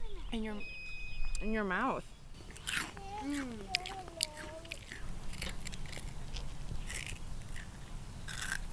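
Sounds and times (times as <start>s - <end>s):
speech: 0.3s - 0.8s, 1.4s - 2.2s, 3.2s - 4.1s
biting into crisp fried flour donut with flowers and orange: 2.4s - 8.7s.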